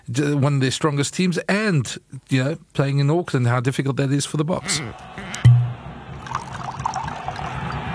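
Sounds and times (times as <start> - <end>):
speech: 0.1 - 5.2
short knock: 5.5 - 5.8
wine pouring into a glass: 6.2 - 7.8.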